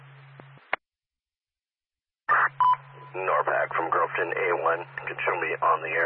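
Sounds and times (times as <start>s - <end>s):
crackly radio burst and click: 2.3s - 2.6s, 3.3s - 6.0s
radio dispatch paging beep tone: 2.6s - 3.2s
speech: 3.1s - 6.0s
man speaking over radio: 3.2s - 6.0s.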